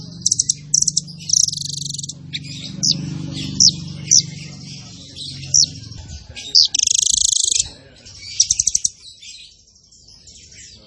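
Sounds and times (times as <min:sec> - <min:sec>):
zebra finch buzzy trill: 0:00.0 - 0:07.7
continuous low drone: 0:00.0 - 0:08.9.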